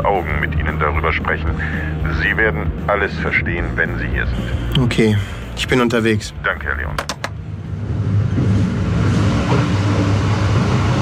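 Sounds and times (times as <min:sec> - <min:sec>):
speech: 0:00.0 - 0:07.2
train racing through the darkness with low roar and rattling: 0:07.4 - 0:11.0.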